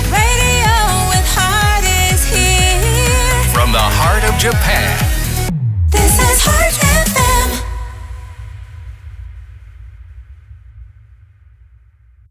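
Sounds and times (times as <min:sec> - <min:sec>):
sung jingle in C major: 0:00.2 - 0:08.9.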